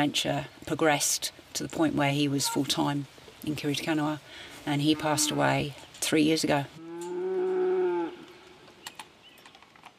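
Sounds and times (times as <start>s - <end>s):
speech: 0.0s - 6.8s
cow mooing outdoors: 4.9s - 5.6s, 6.8s - 8.5s.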